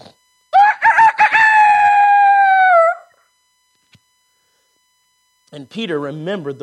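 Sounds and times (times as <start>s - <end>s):
rooster crowing: 0.5s - 3.2s
speech: 5.7s - 6.6s.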